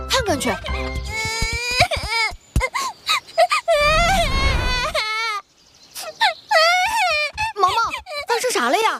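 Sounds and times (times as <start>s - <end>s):
speech: 0.3s - 1.4s
child crying: 1.1s - 2.4s, 3.4s - 5.4s, 6.0s - 8.5s.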